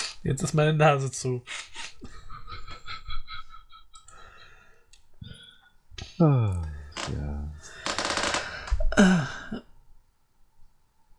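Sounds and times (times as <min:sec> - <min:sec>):
speech: 0:00.2 - 0:02.2, 0:06.2 - 0:07.3
bed creaking as a person lies down: 0:06.7 - 0:09.0.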